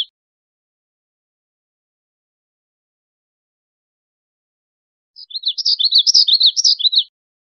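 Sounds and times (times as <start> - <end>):
black-throated gray warbler buzzy song: 5.2 - 7.1.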